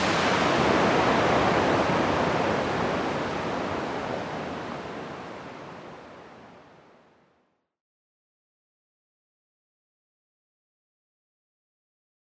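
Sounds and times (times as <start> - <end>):
waterfall roaring: 0.0 - 6.9.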